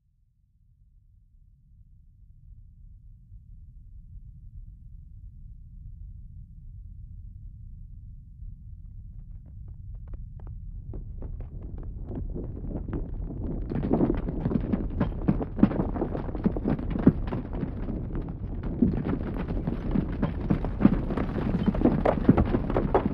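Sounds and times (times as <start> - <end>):
avalanche of many large rocks falling: 10.8 - 23.1.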